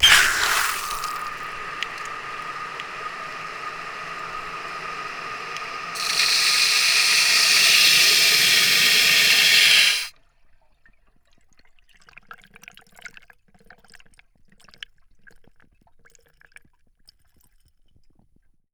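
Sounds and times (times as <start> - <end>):
flushometer toilet flushing recorded with PZM microphone: 0.0 - 10.1.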